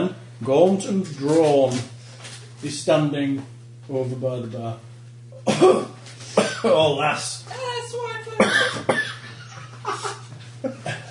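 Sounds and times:
speech: 0.0s - 1.9s, 2.6s - 4.9s, 5.5s - 8.9s
gaunt man coughing into a handkerchief: 5.4s - 6.8s, 8.4s - 9.3s.

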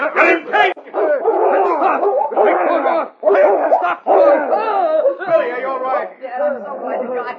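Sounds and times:
man's panicked shouting and cries: 0.0s - 6.2s
dog snarling and growling while attacking a man: 0.9s - 4.8s.

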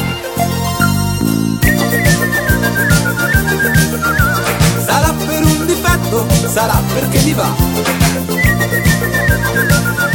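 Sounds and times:
bouncy rhythmic instrumental backing with steady bass notes: 0.0s - 10.1s
person whistling a bright trilling melody: 1.6s - 6.2s, 8.0s - 10.1s
speech: 6.6s - 8.0s.

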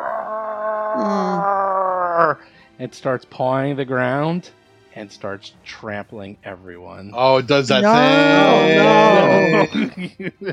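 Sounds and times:
voice imitating a Tyrannosaurus roar: 0.0s - 2.4s, 7.8s - 9.9s
speech: 1.0s - 1.3s, 2.2s - 10.5s
laughter: 7.7s - 10.5s.

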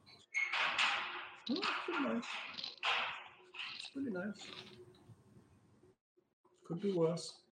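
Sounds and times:
metal gate rattling and scraping with squealing hinge-like creaks: 0.2s - 4.9s
speech: 1.5s - 2.6s, 4.0s - 4.9s, 6.7s - 7.4s.

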